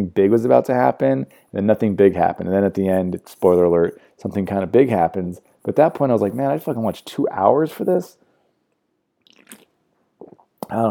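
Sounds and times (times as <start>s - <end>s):
speech: 0.0s - 8.2s, 10.7s - 10.8s
quick wet slurping sip from a drink: 9.2s - 10.6s.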